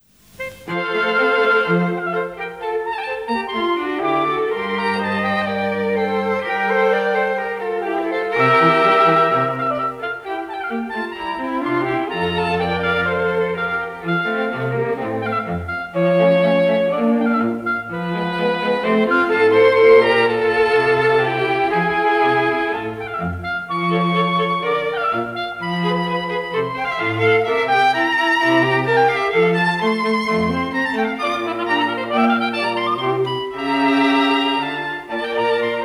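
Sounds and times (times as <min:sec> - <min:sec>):
oboe quartet playing: 0:00.0 - 0:35.8.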